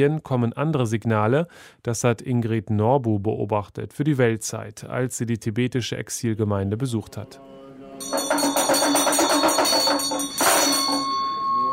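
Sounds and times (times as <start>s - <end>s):
speech: 0.0s - 8.5s
small drum beaten by a monk: 8.0s - 11.2s
small hand bell rung by a monk: 8.0s - 11.7s.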